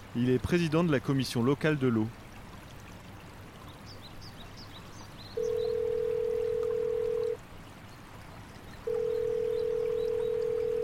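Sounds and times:
speech: 0.1 - 2.2
electronic telephone tone while a call is placed: 5.4 - 7.4, 8.9 - 10.8.

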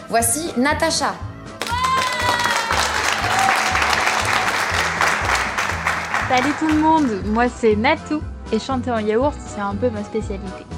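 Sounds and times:
speech: 0.1 - 1.3, 6.3 - 10.7
crowd applauding a contest co-commentator: 1.6 - 7.4
whistles and cheers: 1.7 - 4.9
rhythmic musical beat: 3.8 - 7.5.

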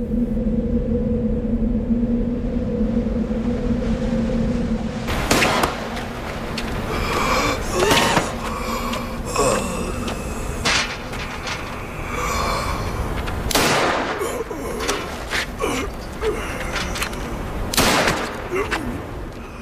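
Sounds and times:
dense rumbling noise: 0.0 - 19.5
gunshots fired by pursuers at a fleeing man: 5.3 - 5.8, 13.5 - 14.2, 17.7 - 18.5.

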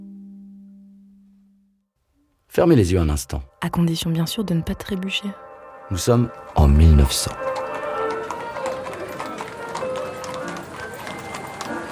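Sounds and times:
speech: 2.6 - 7.5
bustle of hooves and movement: 6.0 - 11.9
horses neighing outdoors: 7.3 - 11.9.

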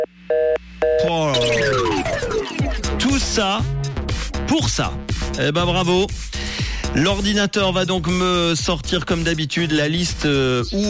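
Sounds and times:
warbling electronic telephone tone sweeping downward in pitch: 1.0 - 3.1
speech: 3.4 - 3.8, 4.5 - 10.8.

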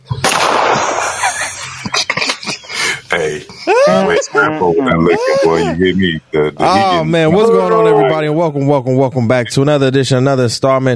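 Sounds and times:
pistol gunfire: 0.2 - 1.3
laughter: 0.9 - 9.0
speech: 4.4 - 10.9.

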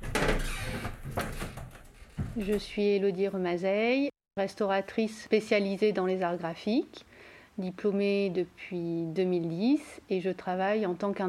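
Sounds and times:
workshop door pushed open with a creaky scrape: 0.0 - 2.8
speech: 2.4 - 11.2.

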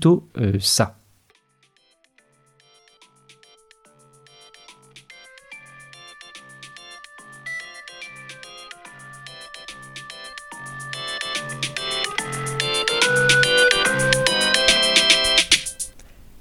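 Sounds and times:
speech: 0.0 - 1.0
phone's melodic morning alarm ringtone: 5.2 - 15.8.

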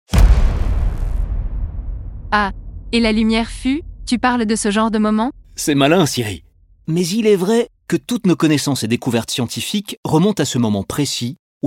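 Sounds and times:
loud explosion sound effect representing the Big Bang: 0.1 - 7.3
long deep rumble: 0.2 - 8.0
speech: 2.3 - 11.6.

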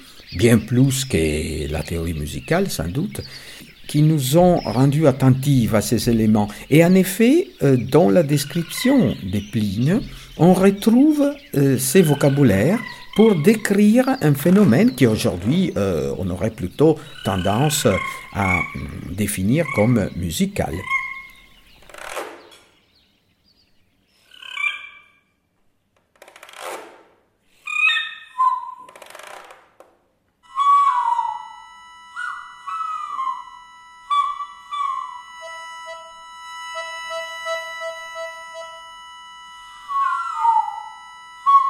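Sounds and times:
nightingale singing and trilling: 0.0 - 25.3, 27.7 - 28.9, 30.4 - 41.6
speech: 0.3 - 21.0.

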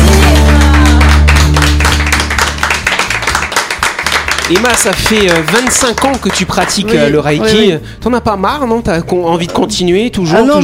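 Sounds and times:
small group hand clapping: 0.0 - 7.2
speech: 4.5 - 10.6.

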